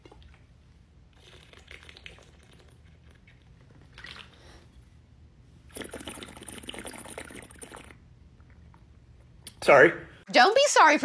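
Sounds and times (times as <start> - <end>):
sipping and gulping water from a bottle: 0.0 - 4.8, 5.6 - 9.0
speech: 9.6 - 11.0.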